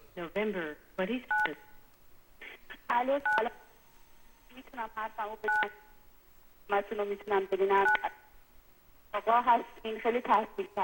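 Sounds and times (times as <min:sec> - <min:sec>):
speech: 0:00.2 - 0:01.7, 0:02.9 - 0:03.6, 0:04.6 - 0:05.9, 0:06.7 - 0:08.2, 0:09.1 - 0:10.8
dual-tone telephone beep as a phone line is opened: 0:01.3 - 0:01.8, 0:05.5 - 0:05.9, 0:07.8 - 0:08.2.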